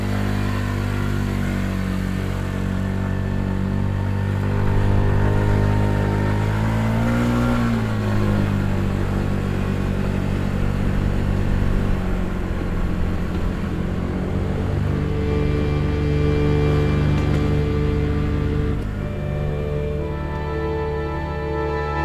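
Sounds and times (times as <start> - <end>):
scooter engine running in an old train station car park: 0.0 - 22.0.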